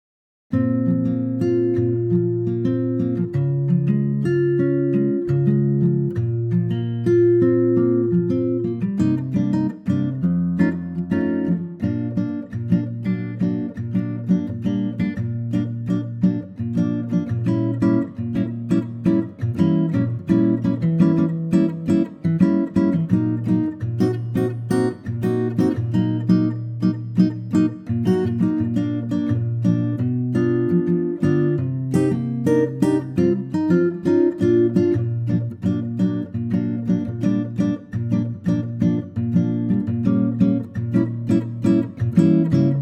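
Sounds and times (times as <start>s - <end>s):
acoustic guitar in B flat: 0.5s - 42.7s.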